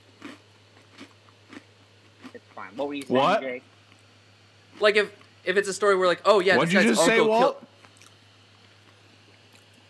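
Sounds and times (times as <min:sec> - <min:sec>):
person chewing crunchy food: 0:00.0 - 0:02.5, 0:07.8 - 0:09.8
speech: 0:02.6 - 0:03.8, 0:04.8 - 0:07.7.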